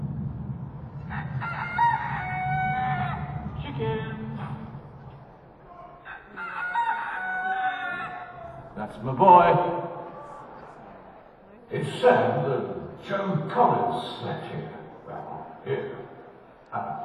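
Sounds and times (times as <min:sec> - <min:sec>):
steady low wind-like rumble: 0:00.0 - 0:05.4
chickens crowing outdoors: 0:01.0 - 0:03.7, 0:05.6 - 0:09.0
speech: 0:08.9 - 0:09.9, 0:11.7 - 0:14.8.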